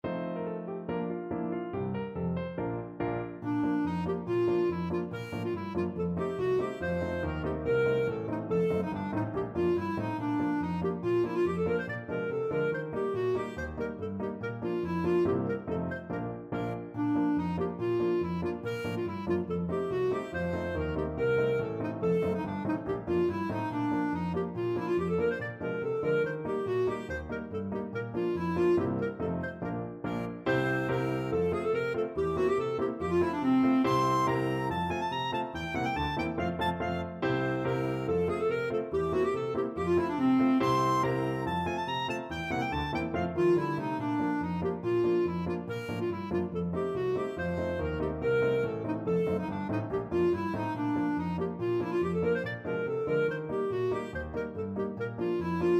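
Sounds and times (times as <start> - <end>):
clarinet melody: 0.0 - 55.7.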